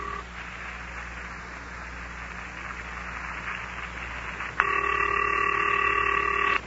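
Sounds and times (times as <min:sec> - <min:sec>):
telephone electronic ringing tone: 0:00.0 - 0:00.3, 0:04.6 - 0:06.6
telephone line hiss: 0:00.0 - 0:06.6.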